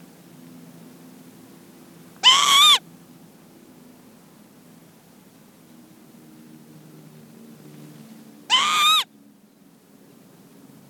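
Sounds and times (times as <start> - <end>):
aeroplane: 0.0 - 10.8
female northern lapwing wheezy ground anxiety call: 2.2 - 2.8, 8.5 - 9.1.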